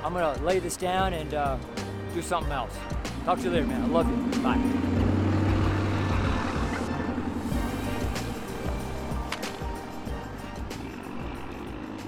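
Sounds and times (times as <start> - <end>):
speech: 0.0 - 5.0
deep idling engine drone at a truck stop roundabout: 2.8 - 12.0
broad traffic noise rolling past at a truck stop roundabout: 2.9 - 12.0.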